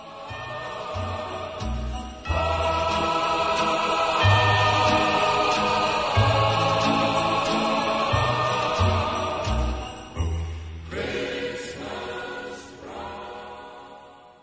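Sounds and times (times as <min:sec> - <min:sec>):
bright jingly high tones: 0:00.0 - 0:11.9
recorded Spanish Christmas carol: 0:00.0 - 0:14.4.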